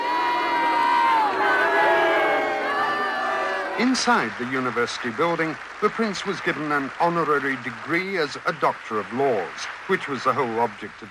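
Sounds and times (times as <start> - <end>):
protest crowd shouting and jeering at a university: 0.0 - 4.0
speech: 3.8 - 11.0.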